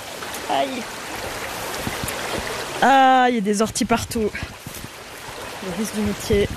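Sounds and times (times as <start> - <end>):
flowing river water rushing: 0.0 - 6.5
speech: 0.5 - 1.4, 2.8 - 4.7, 5.6 - 6.5.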